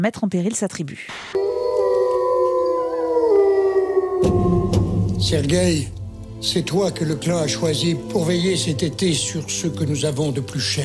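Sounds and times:
speech: 0.0 - 1.5, 5.2 - 10.8
several wolves howling together: 1.4 - 8.6
low rumbling background: 4.0 - 9.3.

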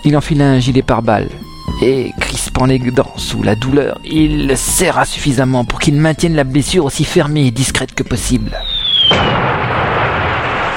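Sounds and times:
speech: 0.0 - 9.4
high descending whistle: 8.6 - 9.4
loud explosion: 8.8 - 10.7.

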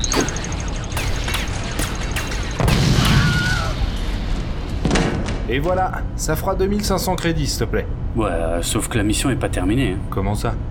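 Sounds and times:
scattered sharp impacts: 0.0 - 4.2
grenade explosion in a sci-fi action scene: 0.0 - 5.4
speech: 5.5 - 10.6.

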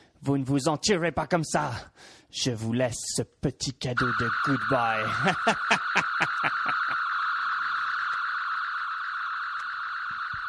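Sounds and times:
speech: 0.2 - 6.6
alarm clock ringing with a shrill electronic tone: 4.0 - 10.4
laughter: 5.0 - 7.0.

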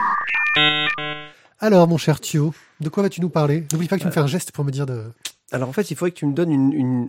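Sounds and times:
short electronic online jingle with synthetic tones and buzzy chord: 0.0 - 1.4
speech: 0.3 - 7.0.

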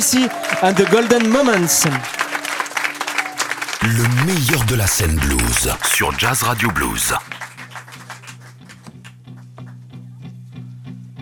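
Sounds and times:
speech: 0.0 - 2.2, 3.8 - 7.4
audience applause: 0.0 - 9.2
brief voice: 3.8 - 7.2.

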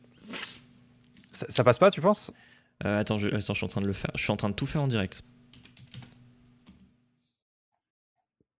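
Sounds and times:
speech: 1.4 - 5.4
typing payment card details on computer keyboard: 5.5 - 6.8.

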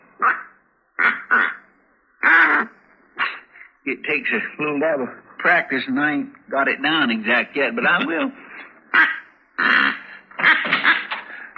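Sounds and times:
duck call blown imitating quacks: 0.2 - 1.6, 2.2 - 3.6, 8.9 - 11.5
speech: 3.9 - 8.4.

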